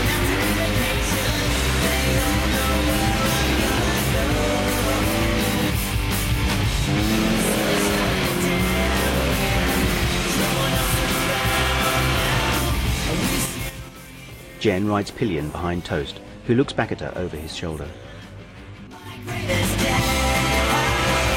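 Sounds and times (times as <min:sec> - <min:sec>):
motorized snowmobile engines roaring along a sunny forest path: 0:00.0 - 0:13.7, 0:20.0 - 0:21.3
speech: 0:14.6 - 0:18.1.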